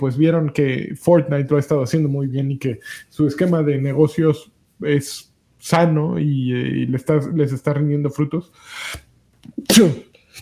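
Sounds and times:
speech: 0.0s - 10.4s
quick catching breaths: 8.6s - 9.1s
sneeze: 9.6s - 10.4s.

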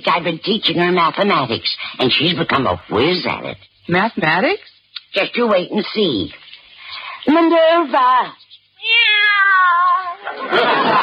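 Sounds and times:
speech: 0.0s - 6.4s, 7.2s - 11.0s
cat meowing: 8.8s - 10.2s
laughter: 10.2s - 11.0s.

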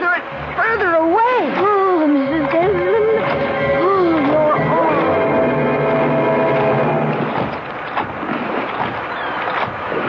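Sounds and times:
churning, gurgling water rushing and splashing: 0.0s - 10.0s
low droning groan of straining boat hull: 0.0s - 10.0s.

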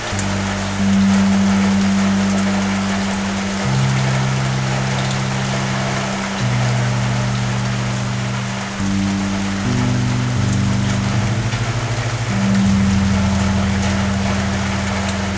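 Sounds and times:
heavy rain drumming on an awning: 0.0s - 15.3s
low sustained hum shifting pitch in steps: 0.0s - 15.3s.

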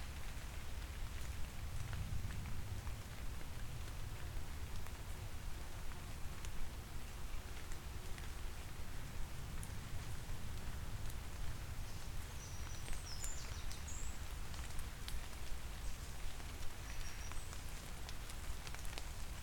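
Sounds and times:
gentle rain pattering through hazel and oak leaves in Herefordshire: 0.0s - 19.4s.

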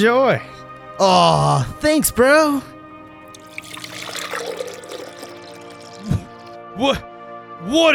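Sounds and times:
speech: 0.0s - 2.7s, 6.8s - 7.9s
milk pouring into a bowl: 3.3s - 6.6s.

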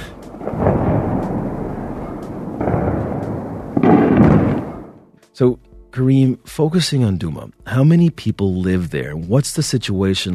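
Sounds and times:
phosphorus bombs exploding over Duma in Eastern Ghouta: 0.0s - 5.0s
speech: 5.4s - 10.3s.

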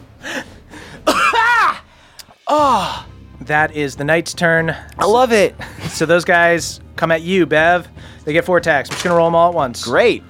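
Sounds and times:
hacking cough after a drag of a cigarette: 1.0s - 1.9s
speech: 2.5s - 10.2s.

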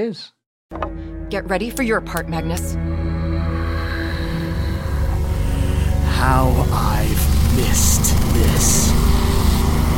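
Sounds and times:
speech: 0.0s - 2.9s, 6.2s - 9.2s
boat engine droning: 2.7s - 9.9s.

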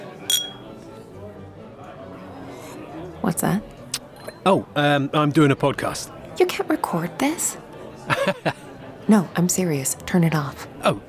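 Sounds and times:
low murmur of voices: 0.0s - 11.0s
glasses clinking in a toast: 0.2s - 0.8s
speech: 3.2s - 3.8s, 4.4s - 11.0s
laughter: 7.8s - 8.9s.

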